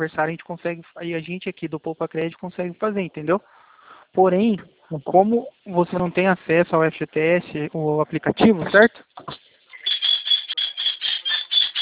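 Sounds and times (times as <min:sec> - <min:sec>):
speech: 0:00.0 - 0:09.4
pet bird squawking over a phone line: 0:09.7 - 0:11.7.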